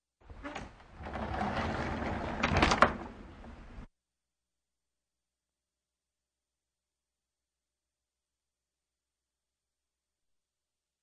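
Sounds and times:
door on runners: 0.2s - 3.9s.

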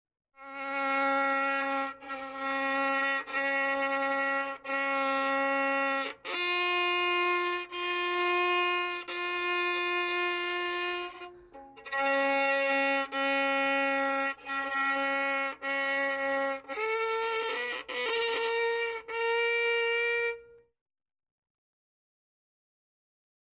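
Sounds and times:
violin played by a beginner musician: 0.4s - 20.7s.

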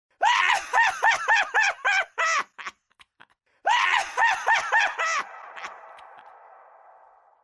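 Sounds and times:
man's croaking demonic laugh: 0.3s - 7.1s.

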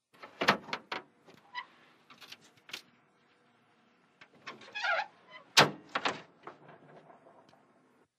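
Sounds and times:
tank hatch opening and closing: 0.1s - 2.9s, 4.2s - 7.7s.

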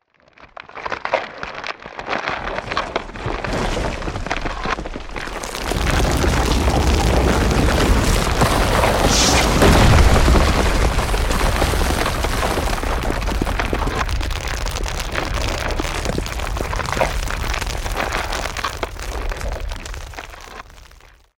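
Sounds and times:
cracking and crumbling debris: 0.1s - 21.3s.

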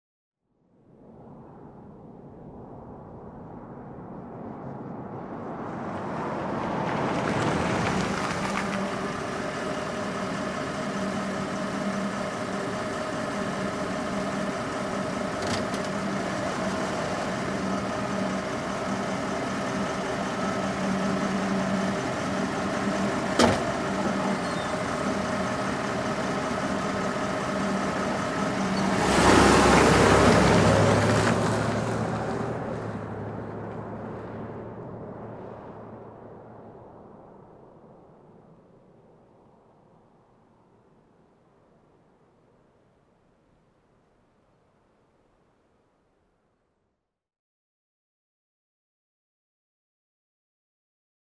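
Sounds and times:
vehicle arriving: 3.8s - 38.8s.

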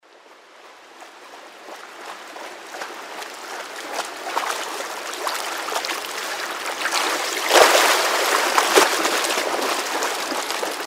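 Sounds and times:
person swimming up: 0.8s - 10.8s
person diving into water: 2.1s - 10.8s.

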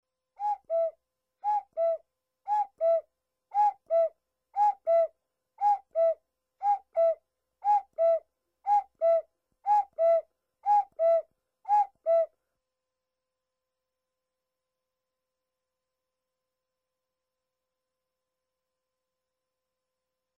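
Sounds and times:
cuckoo clock: 0.4s - 12.3s.

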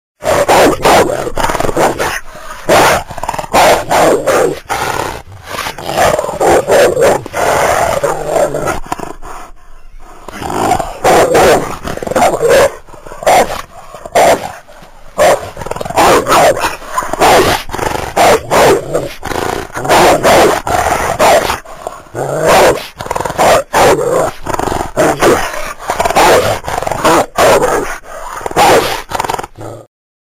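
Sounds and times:
angry furious roaring: 0.2s - 9.4s, 10.0s - 29.9s.

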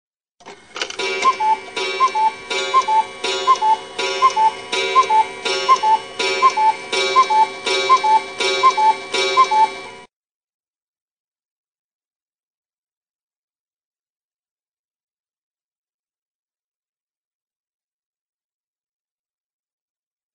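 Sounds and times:
cuckoo clock chiming: 0.4s - 10.1s.

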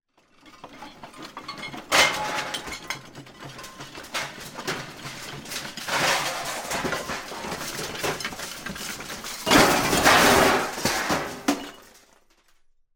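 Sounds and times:
metal objects falling from kitchen shelves in a house earthquake: 0.4s - 12.6s.

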